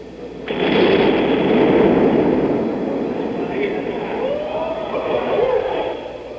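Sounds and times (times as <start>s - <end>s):
bomb explosion in a city street: 0.2s - 5.2s.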